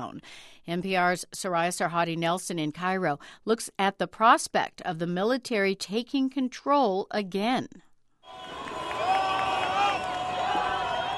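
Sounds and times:
speech: 0.0 - 7.9
high whistles: 8.3 - 11.1
large protest crowd cheering and shouting: 8.3 - 11.1.

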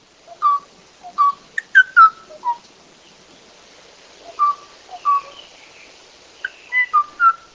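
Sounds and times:
male Kauai O'o singing clear liquid whistled notes in Hawaii: 0.3 - 2.6, 4.3 - 7.5.

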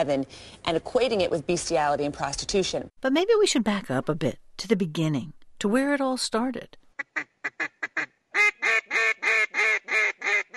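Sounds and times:
speech: 0.0 - 9.1
duck call blown: 7.0 - 10.5.

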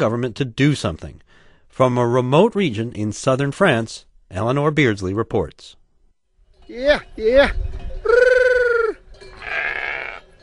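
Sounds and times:
speech: 0.0 - 1.2, 1.8 - 5.8, 6.7 - 7.8
sheep from a flock of ewes and rams in southern France bleating: 9.4 - 10.3.

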